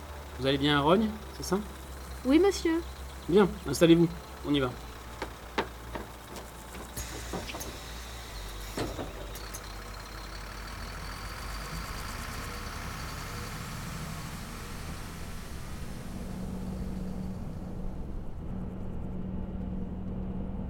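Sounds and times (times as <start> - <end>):
on-demand city bus engine running: 0.0 - 20.6
speech: 0.4 - 4.9
sharp clicks and knocks: 4.9 - 7.9.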